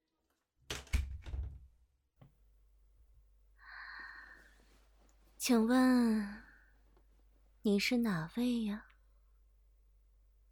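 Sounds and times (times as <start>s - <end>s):
door pushed shut with heavy thuds: 0.7s - 1.7s
speech: 5.4s - 6.4s, 7.6s - 8.9s.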